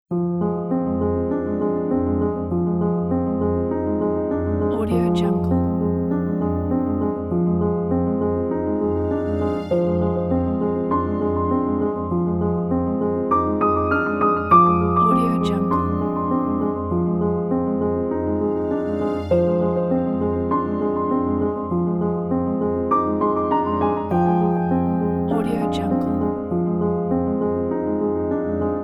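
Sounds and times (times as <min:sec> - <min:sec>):
mystery documentary piano music: 0:00.1 - 0:28.8.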